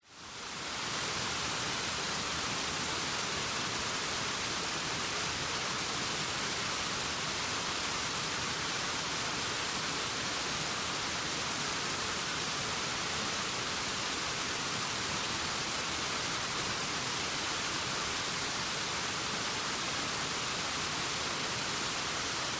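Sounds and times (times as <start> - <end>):
gentle waterfall in Vietnam rainforest jungle: 0.0 - 22.5.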